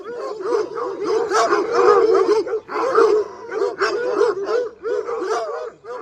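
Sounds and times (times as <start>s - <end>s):
two dogs barking and yipping excitedly: 0.0s - 5.9s.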